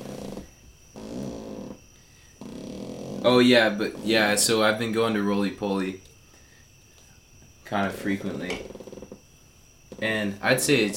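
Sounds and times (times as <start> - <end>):
cot creaking: 0.0 - 1.8, 2.4 - 4.5, 7.8 - 9.3
low raspy croaking fart-like noises: 0.0 - 5.2, 6.9 - 10.9
speech: 3.2 - 6.1, 7.7 - 8.8, 10.0 - 10.9.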